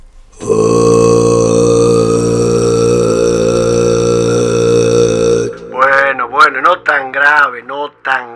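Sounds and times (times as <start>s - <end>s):
deep steady sung note at the lowest vocal tone: 0.4s - 7.0s
person talking: 0.4s - 8.3s.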